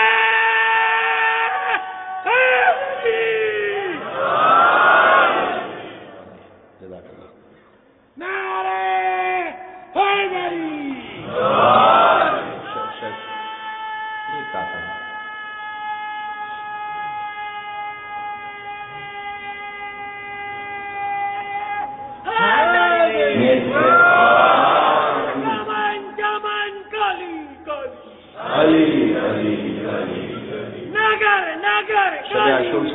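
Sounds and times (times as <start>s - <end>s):
single amplified voice chanting slogans at a religious gathering: 0.0s - 6.7s, 8.2s - 32.9s
crowd at a religious gathering chanting slogans in response: 1.5s - 6.3s, 11.0s - 13.8s, 17.1s - 29.6s.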